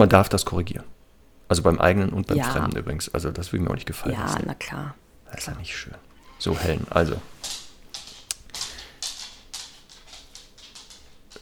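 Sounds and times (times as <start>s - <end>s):
speech: 0.0s - 7.6s
dog claws clicking on a hard floor: 6.7s - 11.4s.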